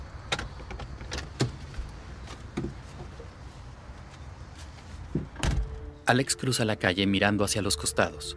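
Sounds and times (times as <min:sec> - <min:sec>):
car engine or road rumble: 0:00.0 - 0:06.1
car door clicks and thuds as someone climbs out: 0:00.3 - 0:03.3, 0:05.1 - 0:05.8
speech: 0:06.1 - 0:08.3.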